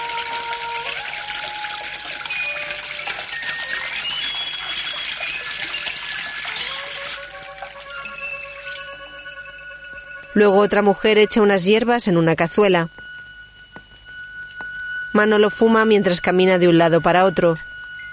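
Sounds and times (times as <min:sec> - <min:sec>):
water running as a woman washes her hands: 0:00.0 - 0:09.1
sustained musical tones: 0:00.0 - 0:18.1
speech: 0:10.4 - 0:13.0, 0:15.2 - 0:17.7.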